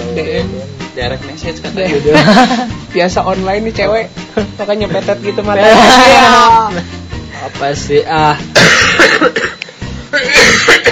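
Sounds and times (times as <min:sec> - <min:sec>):
speech: 0:00.2 - 0:10.9
laughter: 0:01.8 - 0:03.1
person coughing harshly: 0:08.5 - 0:10.9.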